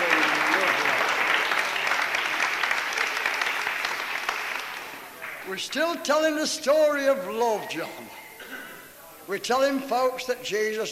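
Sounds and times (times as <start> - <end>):
audience clapping for visitors: 0.0 - 5.9
speech: 5.5 - 8.2, 9.3 - 10.9.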